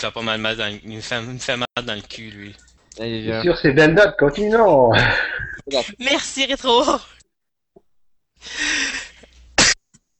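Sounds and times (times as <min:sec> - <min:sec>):
speech: 0:00.0 - 0:07.2, 0:08.4 - 0:09.0
quieter drawn-out throaty sound: 0:04.5 - 0:05.8
person coughing: 0:04.9 - 0:05.8.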